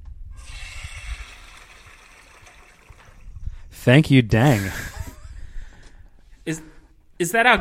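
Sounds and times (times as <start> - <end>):
toilet flushing: 0.4 - 3.4
speech: 3.8 - 4.9, 6.4 - 7.5.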